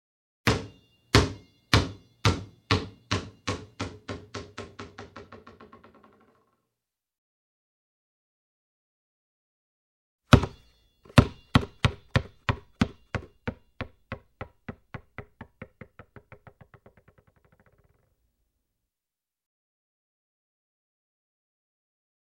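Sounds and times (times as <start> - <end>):
ball falling: 0.5 - 6.4, 10.3 - 18.0.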